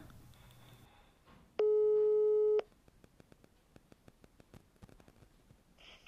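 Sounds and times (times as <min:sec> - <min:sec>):
electronic ringing tone of an unanswered outgoing mobile phone call in Norway: 0:01.6 - 0:02.7.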